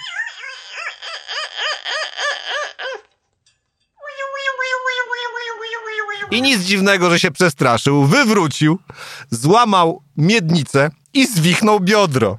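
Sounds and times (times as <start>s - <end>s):
parrot screeching in a park: 0.0s - 3.0s, 4.0s - 6.4s
speech: 6.3s - 12.3s.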